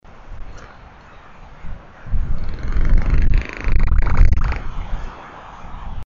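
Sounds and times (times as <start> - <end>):
albatrosses calling: 1.1 - 4.8.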